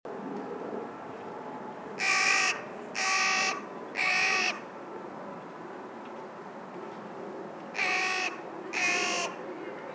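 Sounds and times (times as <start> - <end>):
Carrion crow Corvus corone giving hoarse caws: 2.0 - 4.6, 7.8 - 9.4.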